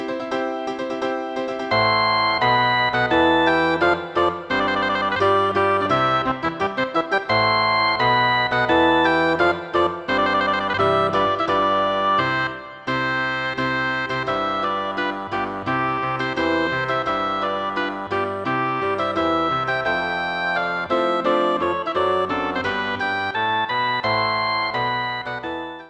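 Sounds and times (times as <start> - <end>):
bassoon: 0.2 - 25.8
oboe: 0.3 - 25.8.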